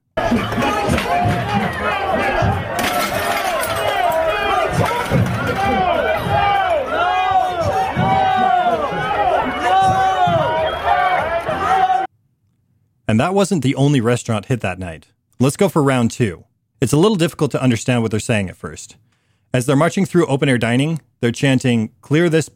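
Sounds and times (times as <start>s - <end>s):
feet pounding as people run about: 0.2s - 11.3s
crowd shouting and screaming in a restaurant at night: 0.2s - 12.1s
crashes and bangs: 0.3s - 6.6s
glass shattering: 2.7s - 5.6s
speech: 13.1s - 22.5s.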